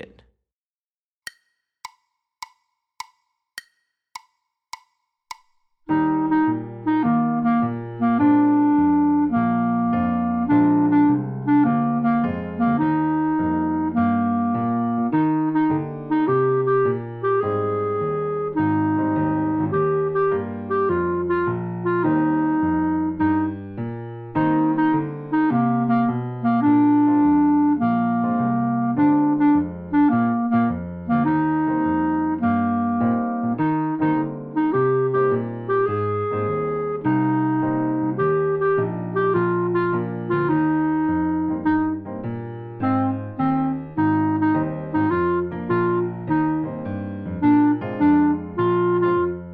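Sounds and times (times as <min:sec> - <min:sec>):
jazz clarinet etude: 0:05.9 - 0:49.5.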